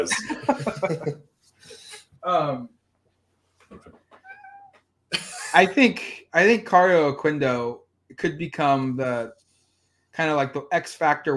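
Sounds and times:
laughter: 0.0 - 1.2, 5.2 - 6.0
speech: 0.0 - 2.8, 3.7 - 4.0, 5.5 - 9.4, 10.2 - 11.3
cat meowing frantically: 4.2 - 4.7.

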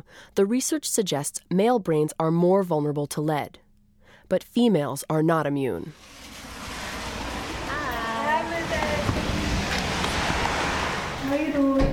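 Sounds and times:
speech: 0.1 - 3.6, 4.3 - 6.3
heavy rain pouring in northern Cincinnati: 6.0 - 11.6.

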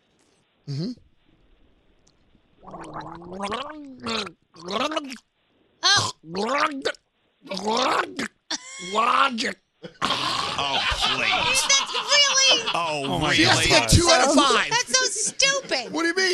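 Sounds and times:
person gargling water while singing a song melody: 0.7 - 1.0, 2.6 - 5.2, 5.8 - 9.2
speech: 0.7 - 1.1, 2.6 - 5.3, 6.2 - 16.3
laughter: 9.8 - 16.3.

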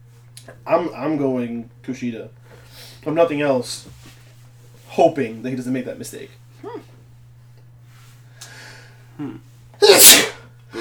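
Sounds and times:
speech: 0.5 - 2.4, 3.0 - 4.0, 5.0 - 7.0, 9.2 - 10.3
loud sneeze: 9.8 - 10.8.

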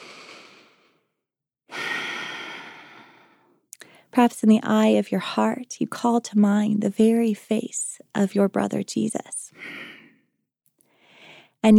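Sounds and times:
slow breathing during guided meditation: 1.7 - 4.1, 9.6 - 10.3, 10.9 - 11.6
speech: 4.2 - 9.8.

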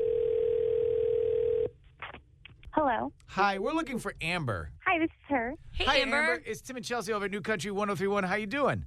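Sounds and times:
telephone dial tone while placing a call: 0.0 - 1.7
speech: 2.8 - 8.8.

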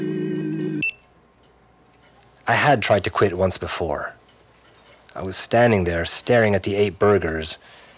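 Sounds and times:
steady electronic tone from a fast food burger station: 0.0 - 1.0
speech: 2.5 - 4.2, 5.2 - 7.8.

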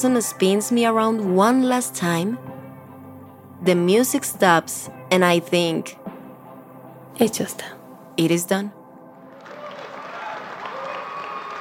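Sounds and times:
speech: 0.0 - 2.6, 3.6 - 6.0, 7.2 - 8.8
audience applause: 9.3 - 11.5.

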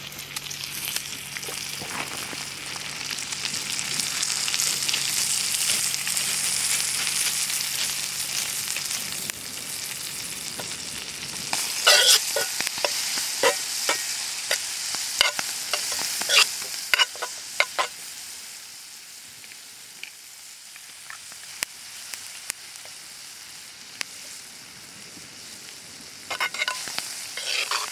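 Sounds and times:
coarsely chopped garlic frying in butter: 0.0 - 27.9
spoon stirring clicks and scrapes: 11.8 - 14.6, 15.2 - 17.9, 26.3 - 27.9.

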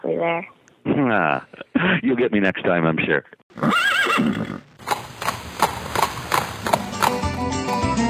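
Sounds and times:
speech: 0.0 - 4.7
horse neighing: 3.5 - 7.9
horse hooves clip-clopping: 4.8 - 8.0.

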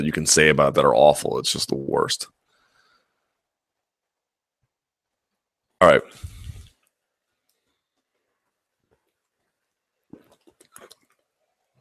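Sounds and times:
speech: 0.0 - 2.4, 5.8 - 6.3
person gulping water: 10.0 - 11.7.

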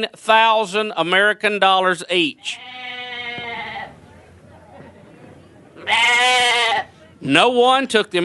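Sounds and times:
speech: 0.0 - 3.0, 5.9 - 8.2
low noise: 0.0 - 8.2
brown goat bleating in a church: 2.4 - 4.0, 5.8 - 7.0.

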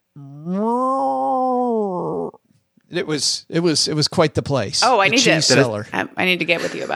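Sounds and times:
person imitating a cow's moo: 0.2 - 2.4
speech: 2.9 - 6.9.

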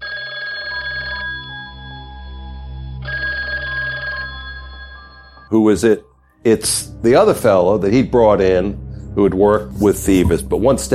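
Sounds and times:
telephone bell ringing: 0.0 - 5.5
speech: 5.5 - 10.9.

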